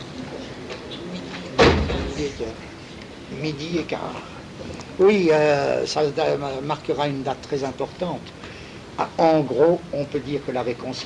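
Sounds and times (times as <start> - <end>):
door pushed shut with a solid thud: 1.5 - 2.4
speech: 1.9 - 2.7, 3.3 - 11.0.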